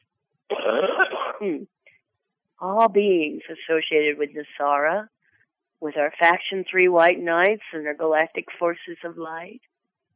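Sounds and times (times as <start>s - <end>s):
single rough raspy cough: 0.5s - 1.6s
speech: 1.4s - 1.9s, 2.6s - 5.2s, 5.8s - 9.7s.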